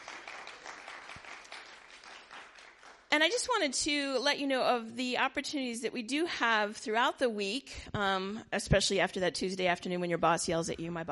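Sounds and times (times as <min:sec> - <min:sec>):
audience applause at a gathering: 0:00.0 - 0:03.1
speech: 0:03.2 - 0:11.1.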